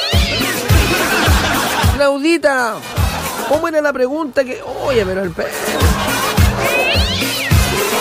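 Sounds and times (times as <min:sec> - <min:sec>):
cat yowling during a fight with a dog: 0:00.0 - 0:00.7, 0:06.1 - 0:07.9
laughter: 0:00.2 - 0:02.1, 0:02.9 - 0:03.8, 0:05.4 - 0:07.9
speech: 0:02.0 - 0:06.1.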